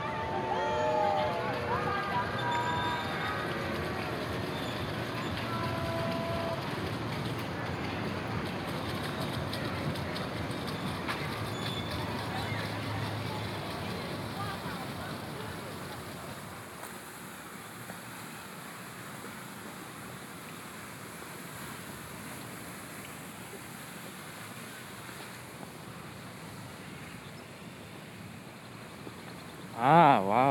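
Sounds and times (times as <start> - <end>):
faint voices murmuring: 0.0 - 16.9
distant train rumbling: 0.0 - 30.5
speech: 29.8 - 30.5.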